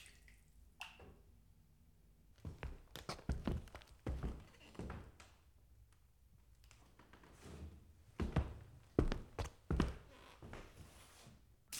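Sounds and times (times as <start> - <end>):
heavy uneven footsteps on stairs: 2.4 - 5.2, 8.1 - 10.8.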